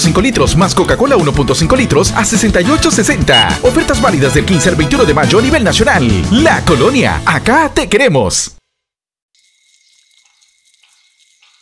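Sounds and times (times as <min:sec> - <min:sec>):
speech: 0:00.1 - 0:08.6
water running from a hose while washing a car: 0:09.3 - 0:11.6.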